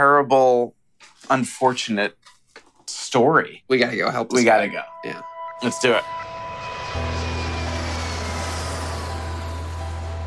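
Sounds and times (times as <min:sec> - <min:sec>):
speech: 0:00.0 - 0:02.3, 0:02.9 - 0:06.3
airplane engine droning in flight heard from inside the cabin: 0:04.4 - 0:10.2.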